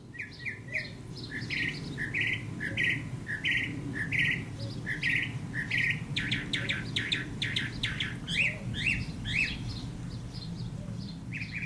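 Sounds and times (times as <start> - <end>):
low constant outdoor rumble: 0.0 - 11.6
northern mockingbird singing: 0.0 - 11.6.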